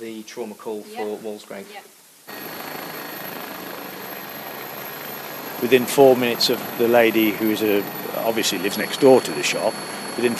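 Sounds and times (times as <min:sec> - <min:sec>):
speech: 0:00.0 - 0:02.6, 0:05.6 - 0:10.3
air ambulance helicopter engine and rotors roaring at a medical emergency: 0:02.3 - 0:10.3
thin high whine of air ambulance helicopter: 0:02.3 - 0:10.3.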